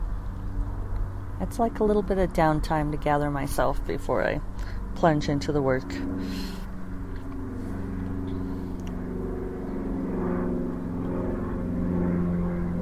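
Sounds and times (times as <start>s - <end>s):
propeller plane droning overhead toward Santa Fe Airport: 0.0s - 12.7s
speech: 1.4s - 6.6s.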